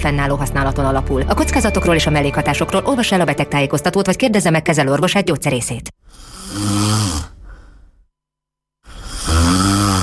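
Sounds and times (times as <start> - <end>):
speech: 0.0 - 7.1
loud rasping snoring: 6.1 - 7.4, 8.9 - 10.0.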